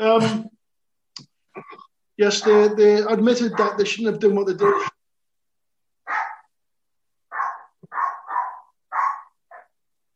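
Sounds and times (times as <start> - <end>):
speech: 0.0 - 0.5, 2.2 - 4.9
Jack Russell terrier barking: 2.4 - 2.9, 3.5 - 3.9, 6.0 - 6.5, 7.3 - 9.8.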